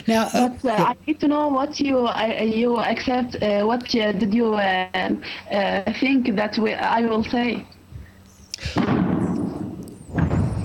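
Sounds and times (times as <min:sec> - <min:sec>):
speech: 0:00.1 - 0:07.8
loud booming explosions: 0:08.8 - 0:10.6.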